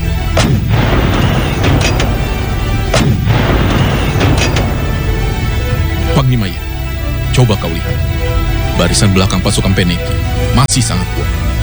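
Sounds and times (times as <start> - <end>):
heavy cannon fire booming: 0.0 - 10.6
low rumble of battle: 0.0 - 11.6
speech: 7.4 - 11.4.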